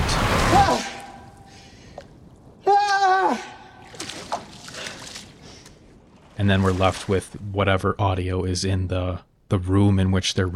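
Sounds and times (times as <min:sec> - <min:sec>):
water sloshing as feet brush it: 0:00.0 - 0:07.8
speech: 0:06.4 - 0:10.5.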